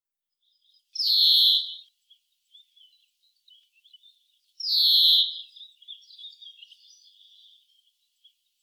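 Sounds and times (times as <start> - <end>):
European greenfinch giving nasal buzzy wheeze calls: 1.0 - 1.9, 4.6 - 5.6.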